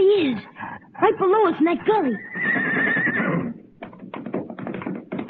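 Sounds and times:
speech: 0.1 - 3.0
horse hooves galloping away: 1.9 - 5.2
horse whinnying: 2.1 - 3.7.

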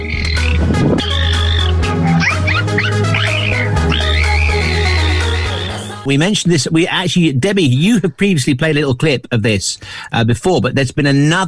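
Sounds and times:
dolphin chattering and laughing in squeaky whistles: 0.0 - 5.9
speech: 6.1 - 11.4.

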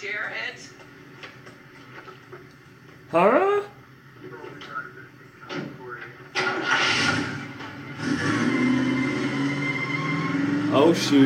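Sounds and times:
speech: 3.1 - 3.7, 10.9 - 11.2
160-horsepower Chevy Camaro engine revving and accelerating: 6.4 - 11.2.

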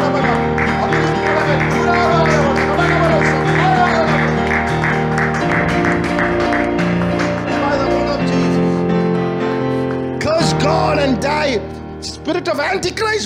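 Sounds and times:
audience clapping hands in a steady rhythm: 0.0 - 10.3
sustained organ-like music: 0.0 - 13.2
speech: 12.5 - 13.2.

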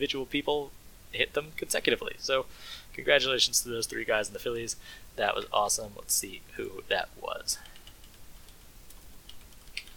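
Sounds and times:
speech: 0.0 - 7.7
quiet hiss: 0.0 - 9.9
mechanical keyboard clicks: 7.8 - 9.9.

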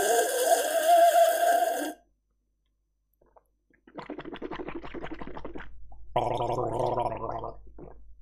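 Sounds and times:
loud wet slurping: 0.0 - 2.0, 3.2 - 8.0
speech: 6.4 - 6.9.

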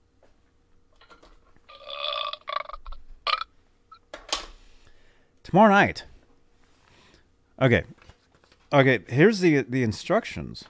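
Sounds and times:
drawn-out croaky burp: 1.7 - 3.5
speech: 5.5 - 6.1, 7.6 - 8.0, 8.7 - 10.6.

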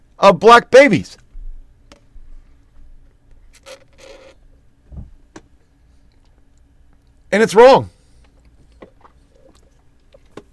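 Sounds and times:
speech: 0.2 - 1.2, 7.3 - 8.0
slurping a drink: 8.7 - 10.5.

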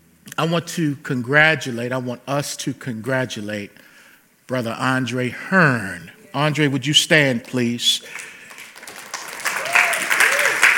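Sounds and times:
speech: 0.4 - 3.9, 4.5 - 8.3
church audience clapping: 7.3 - 10.7.

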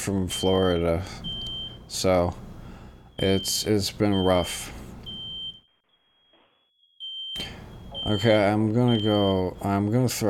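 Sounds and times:
speech: 0.0 - 2.4, 3.2 - 4.8, 8.0 - 10.2
fire alarm sounding a shrill high-pitched tone: 0.3 - 2.0, 3.0 - 9.8.

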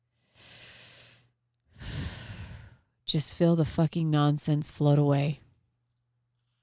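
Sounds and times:
deep breath in and out: 0.0 - 3.0
speech: 3.1 - 5.4.

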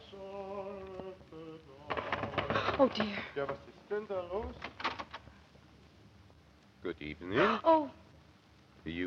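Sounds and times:
umbrella knocking against a door on the second floor of a boarding house: 1.8 - 3.6
speech: 2.8 - 4.8, 6.8 - 8.0, 8.8 - 9.0.

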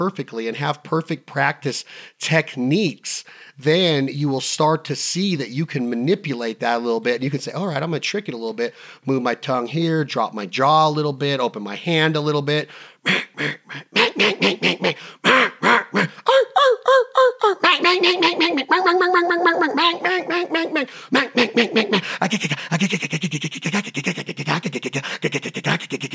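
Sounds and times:
speech: 0.0 - 16.5, 17.2 - 26.1
duck call imitating mallard hen quacks: 13.1 - 16.1, 17.6 - 22.1.

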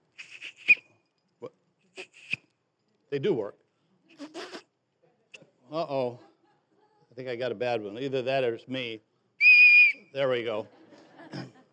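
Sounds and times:
small handheld CNC-machined whistle blown: 0.1 - 0.9, 2.0 - 2.4, 9.4 - 10.1
speech: 3.1 - 3.6, 5.7 - 6.3, 7.2 - 9.1, 10.1 - 10.8
laughter: 10.5 - 11.7.

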